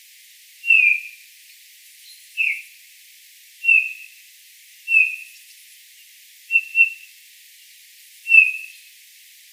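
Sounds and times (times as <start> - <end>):
Pyrrhula pyrrhula Eurasian bullfinch giving soft descending piping whistles: 0.7 - 1.1, 2.4 - 2.6, 4.9 - 5.2, 6.5 - 7.0, 8.3 - 8.7.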